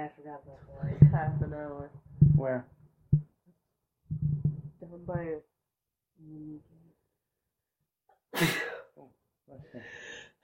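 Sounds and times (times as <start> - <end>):
speech: 0.1 - 2.8, 4.2 - 5.5, 6.2 - 6.7
loud sneeze: 8.4 - 8.9.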